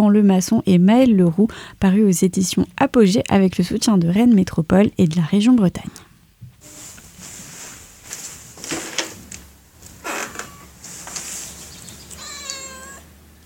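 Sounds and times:
speech: 0.0s - 6.0s
faint shuffling and rustling: 6.5s - 12.2s
cat meowing: 10.3s - 10.8s, 12.0s - 13.2s.

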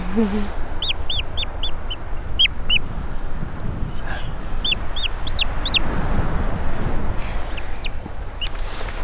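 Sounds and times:
rustling windy noise: 0.0s - 9.0s
European storm petrel chick calling in thin high rising squeaks: 0.4s - 3.0s, 4.5s - 6.1s, 7.4s - 8.6s.

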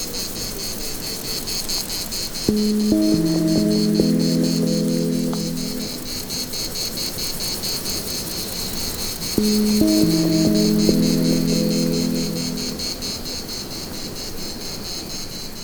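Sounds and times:
cicadas singing in broadleaf tree branches at 1600 m in the Pyrenees: 1.4s - 7.9s, 8.6s - 14.0s
speech: 2.5s - 3.3s
low sustained tones: 2.5s - 6.7s, 9.4s - 13.2s.

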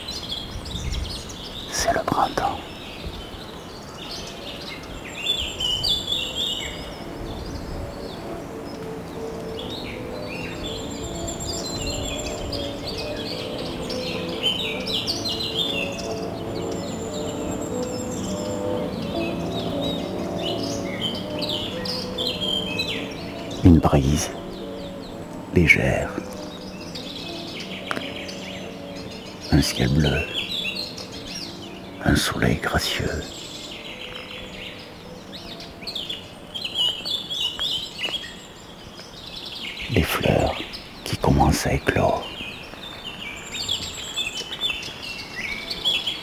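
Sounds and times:
chorus of birds chirping and tweeting among trees: 0.0s - 46.2s
steady soft outdoor hush: 1.6s - 2.9s, 23.2s - 33.8s, 39.8s - 42.5s
speech: 1.8s - 2.7s, 25.6s - 26.2s, 29.6s - 30.3s, 32.1s - 33.4s, 41.5s - 42.4s.

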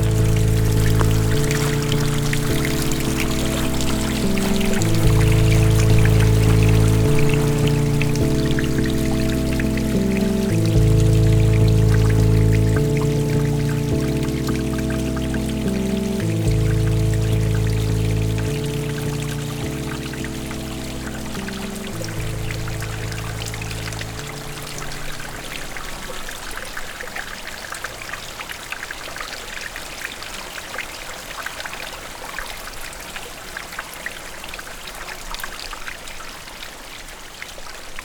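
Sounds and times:
soft sustained music chords: 0.0s - 26.6s
gentle water lapping and trickling: 0.0s - 29.0s.

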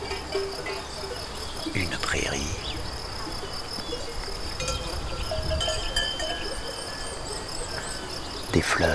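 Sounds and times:
cowbells on cows clanking in an open meadow in the Pyrenean mid-mountains: 0.0s - 1.6s, 4.6s - 8.0s
insects chirring: 0.0s - 8.9s
light breeze: 0.0s - 8.9s
speech: 1.7s - 2.9s, 8.6s - 8.9s.

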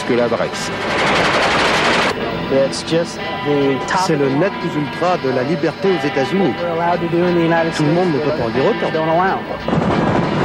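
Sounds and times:
speech: 0.1s - 1.4s, 2.5s - 10.0s
automatic gunfire from weapons of war at a shooting gathering in Kentucky: 0.8s - 2.2s.

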